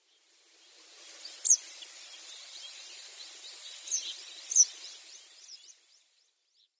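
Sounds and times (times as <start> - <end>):
Eastern Yellow Wagtail calling: 1.3 - 5.7.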